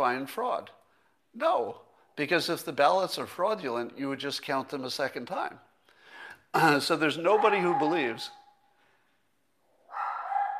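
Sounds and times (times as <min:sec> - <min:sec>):
speech: 0:00.0 - 0:05.7, 0:06.5 - 0:08.4
dog howling bark downstairs: 0:07.2 - 0:08.4, 0:09.8 - 0:10.5.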